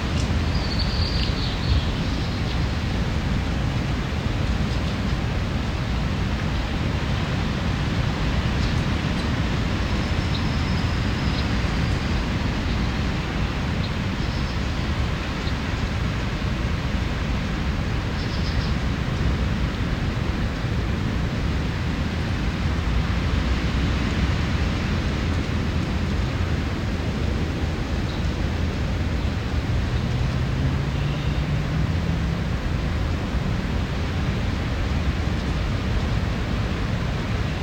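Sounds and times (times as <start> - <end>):
low engine hum: 0.0 - 37.6
low wind or surf rushing at a nature preserve near a beach: 0.0 - 37.6
faint high bird calls: 0.5 - 2.6, 30.9 - 31.5.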